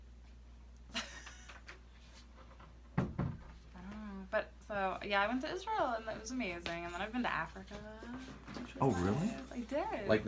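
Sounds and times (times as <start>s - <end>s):
quiet room hum: 0.0s - 10.2s
door closing and latching with a double thud: 2.9s - 3.6s
speech: 4.3s - 10.2s.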